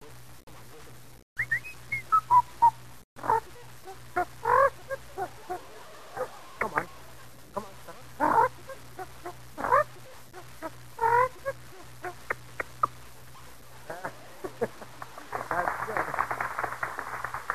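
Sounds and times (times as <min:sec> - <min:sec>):
faint steady low hum: 0:00.0 - 0:17.5
person whistling a bouncy tune: 0:01.4 - 0:02.7
laughter: 0:05.2 - 0:07.1, 0:13.9 - 0:17.5.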